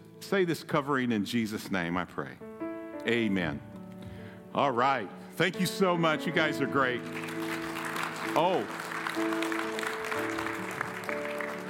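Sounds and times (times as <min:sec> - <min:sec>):
speech: 0:00.3 - 0:03.7, 0:04.5 - 0:07.3, 0:08.4 - 0:09.4
soft subdued audience applause: 0:06.8 - 0:11.6.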